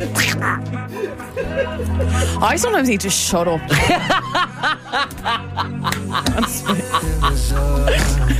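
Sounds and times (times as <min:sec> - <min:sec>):
person imitating a cartoon duck in a raspy nasal voice: 0:00.0 - 0:00.8
laughter: 0:00.0 - 0:02.7, 0:03.6 - 0:08.3
speech: 0:00.0 - 0:08.3.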